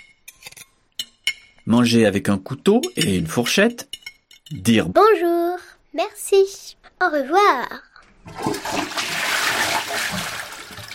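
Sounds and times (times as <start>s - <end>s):
speech: 1.7s - 8.8s
toilet flushing: 8.2s - 10.9s.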